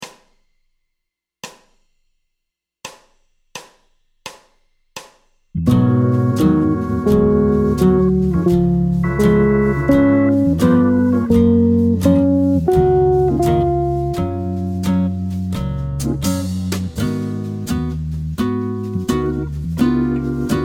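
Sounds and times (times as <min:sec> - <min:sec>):
low jazz guitar arpeggios over a major ii V I progression: 0:05.6 - 0:20.6.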